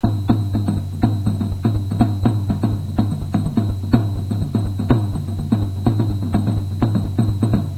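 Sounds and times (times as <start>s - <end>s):
jungle drums: 0.0s - 7.7s.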